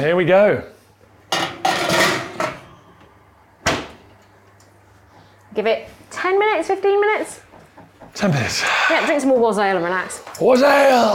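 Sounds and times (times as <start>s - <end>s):
speech: 0.0s - 0.8s, 5.6s - 7.4s, 8.1s - 11.1s
dishes clattering as they are loaded into a kitchen oven: 1.3s - 2.7s.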